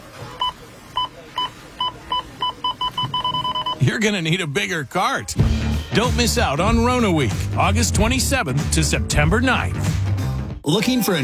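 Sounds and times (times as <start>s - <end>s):
store checkout scanner beeping: 0.0s - 4.6s
low murmur: 0.0s - 5.4s
speech: 4.0s - 10.1s, 10.7s - 11.2s.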